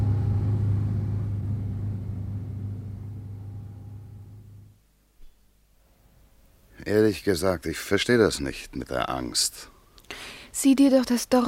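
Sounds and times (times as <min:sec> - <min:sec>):
car driving off: 0:00.0 - 0:04.8
speech: 0:06.9 - 0:09.7, 0:10.6 - 0:11.4.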